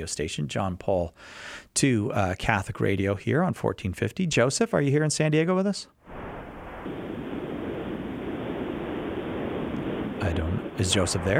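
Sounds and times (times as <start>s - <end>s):
speech: 0.0s - 6.0s, 10.2s - 11.3s
ocean surf over a band-limited phone line: 6.1s - 11.3s.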